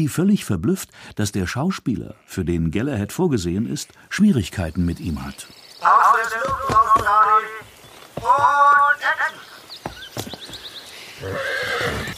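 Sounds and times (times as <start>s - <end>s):
speech: 0.0s - 7.4s
horses neighing: 5.2s - 12.1s
hooves clip-clopping: 5.5s - 12.1s.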